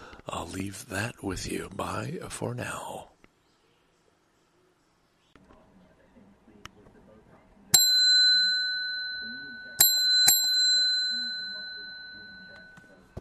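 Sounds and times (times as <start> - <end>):
speech: 0.5 - 3.1
bell ringing with sharp metallic strikes: 7.8 - 13.0.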